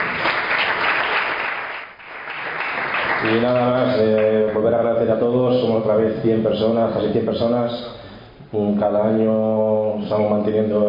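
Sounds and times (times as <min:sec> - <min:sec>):
audience applause: 0:00.0 - 0:04.3
speech: 0:03.2 - 0:10.8.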